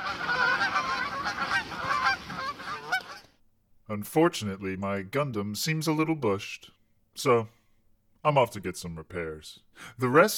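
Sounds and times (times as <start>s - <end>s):
flock of geese honking: 0.0s - 3.4s
speech: 3.9s - 7.6s, 8.2s - 10.3s.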